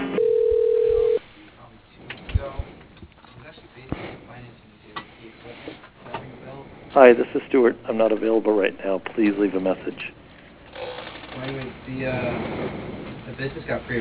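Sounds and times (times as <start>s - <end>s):
phone ring tone as a call is forwarded to voicemail: 0.2s - 1.2s
speech: 7.0s - 10.2s, 11.4s - 12.8s, 13.4s - 13.9s.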